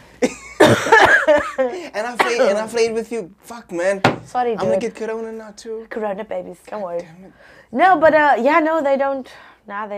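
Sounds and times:
person coughing harshly: 0.2 - 1.3, 2.2 - 2.5
speech: 1.9 - 9.9.

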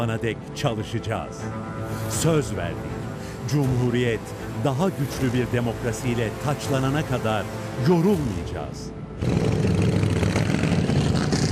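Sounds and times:
speech: 0.0 - 9.6
motorcycle convoy engines revving along the seaside in Maltepe Istanbul Turkey: 9.2 - 11.5.

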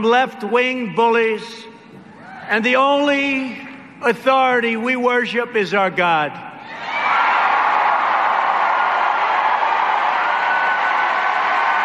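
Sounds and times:
speech: 0.0 - 1.7, 2.5 - 6.8
large crowd applauding and cheering at a rally: 6.7 - 11.8.

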